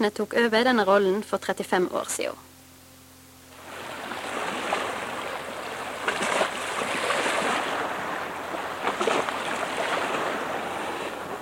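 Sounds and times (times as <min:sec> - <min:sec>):
speech: 0:00.0 - 0:02.5
waves washing against the fjord shore at Marifjøra in Lustrafjorden: 0:03.5 - 0:11.4.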